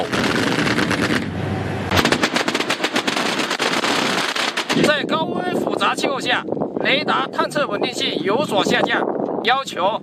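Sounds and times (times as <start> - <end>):
anti-aircraft guns firing in a live-fire air-defence interception drill: 0.0 - 1.3, 1.9 - 4.9
speech: 4.8 - 10.0.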